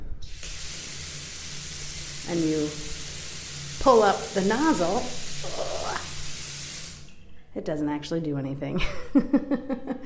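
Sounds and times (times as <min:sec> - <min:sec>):
water gushing from a bath tap in a home: 0:00.2 - 0:07.1
speech: 0:02.3 - 0:02.9, 0:03.8 - 0:06.0, 0:07.6 - 0:10.0
laughter: 0:08.9 - 0:10.0.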